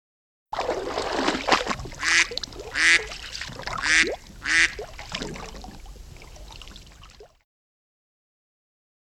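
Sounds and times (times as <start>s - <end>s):
faint watery splashing: 0.6s - 7.4s
duck quacking: 2.0s - 4.8s.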